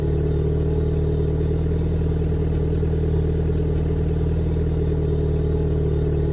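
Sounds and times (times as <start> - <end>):
engines idling: 0.0 - 6.3.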